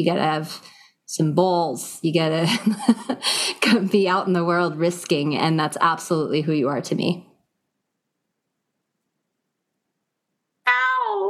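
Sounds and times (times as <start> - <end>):
speech: 0.0 - 7.3
strained strangled-sounding cat meow: 10.6 - 11.2.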